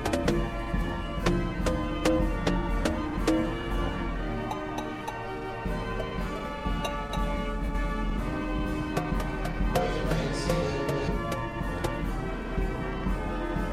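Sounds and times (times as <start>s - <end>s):
sharp percussion taps: 0.0s - 0.5s, 1.2s - 3.6s, 4.4s - 5.3s, 6.0s - 7.4s, 8.8s - 12.1s
carousel organ music: 0.0s - 13.7s.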